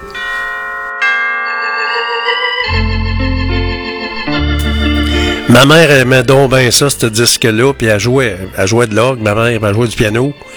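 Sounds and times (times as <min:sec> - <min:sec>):
Christmas bells chiming in a song: 0:00.0 - 0:06.9
instrumental music: 0:01.8 - 0:10.5
speech: 0:05.5 - 0:10.5.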